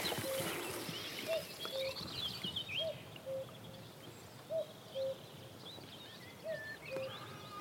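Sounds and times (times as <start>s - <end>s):
common cuckoo calling on moorland on Dartmoor: 0.0s - 3.7s, 4.5s - 5.2s, 6.3s - 7.5s
high twittering birdsong on open moorland on Dartmoor: 0.0s - 7.5s
soft wind on open moorland on Dartmoor: 0.0s - 7.5s.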